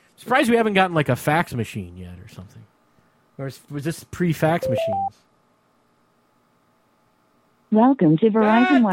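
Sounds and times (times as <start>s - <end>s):
speech: 0.2s - 2.7s, 3.4s - 5.3s, 7.7s - 8.9s
telephone keypad dialing tones: 4.7s - 5.1s.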